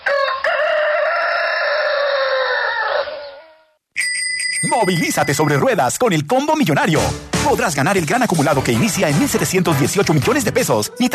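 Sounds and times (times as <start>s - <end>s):
rooster crowing: 0.0s - 3.8s
speech: 4.7s - 11.1s.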